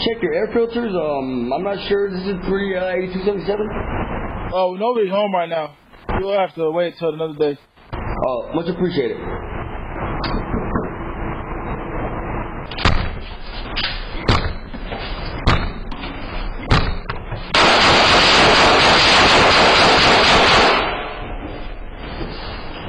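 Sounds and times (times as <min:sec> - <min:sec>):
speech: 0:00.0 - 0:09.4
loud sustained rush of harsh noise: 0:00.0 - 0:22.8
door being kicked in by burglars: 0:12.7 - 0:13.3, 0:14.2 - 0:14.8, 0:15.4 - 0:15.8, 0:16.6 - 0:17.5.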